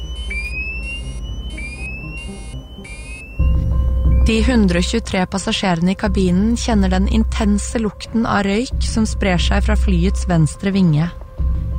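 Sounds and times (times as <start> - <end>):
aircraft cockpit fire alarm sounding for a left engine fire: 0.0 - 6.6
low aircraft engine rumble: 0.0 - 11.7
speech: 4.3 - 11.2.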